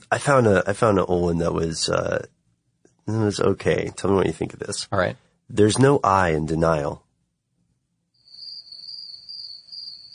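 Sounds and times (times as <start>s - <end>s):
speech: 0.1s - 2.4s, 3.1s - 7.0s
crickets chirping in a high-pitched trill: 8.2s - 10.1s.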